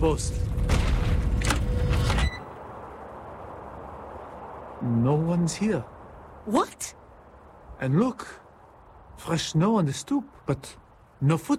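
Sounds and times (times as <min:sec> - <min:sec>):
speech: 0:00.0 - 0:00.8, 0:04.8 - 0:07.0, 0:07.8 - 0:08.4, 0:09.2 - 0:11.5
heavy front door opening: 0:00.6 - 0:02.5.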